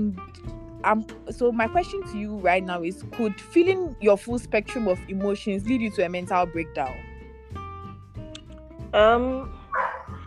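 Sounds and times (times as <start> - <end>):
speech: 0.0 - 7.1, 8.9 - 9.6
dog barking: 9.7 - 10.2.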